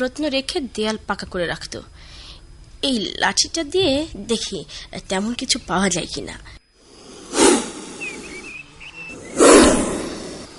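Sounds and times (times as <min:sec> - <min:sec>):
speech: 0:00.0 - 0:02.2, 0:02.8 - 0:06.6
snake hissing from inside a crack in a house wall: 0:06.8 - 0:10.5.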